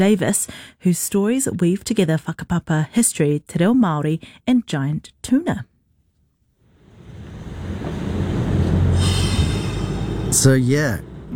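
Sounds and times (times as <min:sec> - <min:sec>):
speech: 0:00.0 - 0:05.7, 0:10.4 - 0:11.3
vintage railway train rumbling on a section of a bike trail: 0:06.7 - 0:11.3
vintage railway train wheel squeal: 0:07.3 - 0:11.2.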